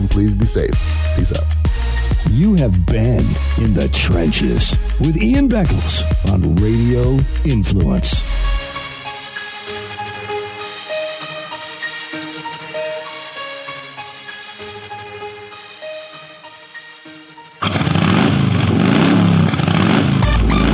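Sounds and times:
music: 0.0s - 17.9s, 20.2s - 20.7s
speech: 0.2s - 8.5s
motorcycle engine revving hard: 17.6s - 20.7s.

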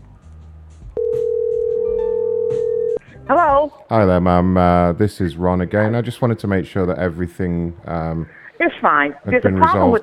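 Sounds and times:
telephone dial tone while placing a call: 1.0s - 3.0s
speech: 3.3s - 10.0s.

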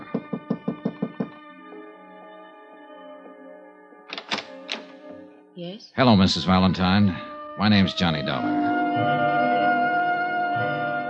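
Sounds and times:
knocking on a hotel room door: 0.0s - 1.4s
sustained music: 0.0s - 11.0s
speech: 5.6s - 9.3s.

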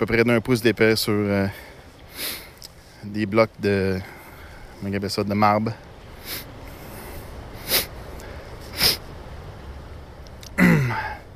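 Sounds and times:
speech: 0.0s - 2.4s, 3.0s - 4.2s, 4.8s - 6.5s
quiet outdoor hiss: 0.0s - 11.3s
person sniffing from being cold: 2.1s - 2.6s, 6.2s - 9.1s.

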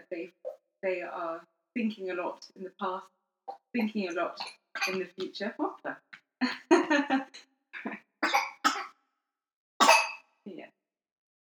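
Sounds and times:
speech: 0.2s - 6.0s
child coughing: 4.4s - 5.0s, 8.2s - 8.9s, 9.8s - 10.2s.

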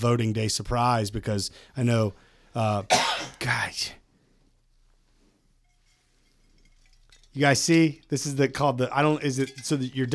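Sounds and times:
speech: 0.0s - 4.0s, 7.4s - 10.1s
lingering harsh throaty cough: 2.9s - 3.5s.

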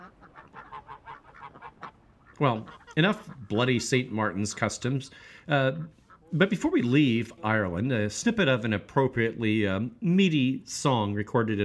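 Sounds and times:
geese cackling: 0.0s - 5.0s, 5.8s - 6.7s
speech: 2.4s - 11.6s.

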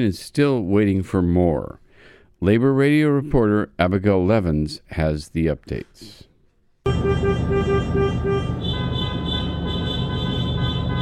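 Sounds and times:
speech: 0.0s - 1.8s, 2.4s - 6.3s
car horns honking at a car caravan protest outside an insurance company: 6.9s - 11.0s
traffic noise: 6.9s - 11.0s.

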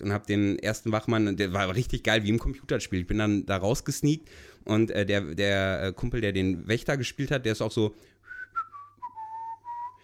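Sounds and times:
speech: 0.0s - 8.1s
person whistling a short tune while walking along a corridor: 8.2s - 10.0s.

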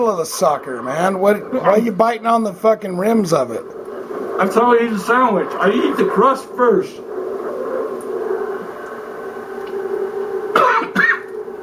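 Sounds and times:
speech: 0.0s - 3.8s, 4.4s - 7.1s
steady low hum: 0.0s - 11.6s
person coughing: 10.5s - 11.3s.

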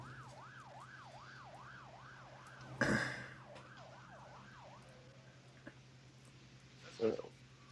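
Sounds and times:
police siren wailing: 0.0s - 5.6s.

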